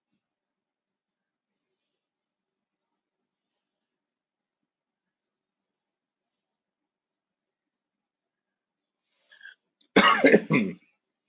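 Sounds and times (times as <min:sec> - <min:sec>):
person coughing: 0:10.0 - 0:10.8.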